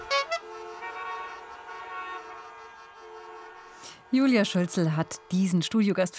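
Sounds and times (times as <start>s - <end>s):
horn honking: 0.0s - 6.1s
speech: 4.1s - 6.1s.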